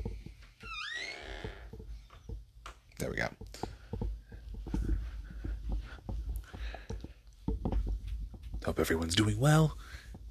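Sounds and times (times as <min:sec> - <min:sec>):
soft low thumps: 0:00.0 - 0:10.2
door hinge squeaking: 0:00.6 - 0:02.3
speech: 0:03.0 - 0:03.7, 0:08.7 - 0:10.0.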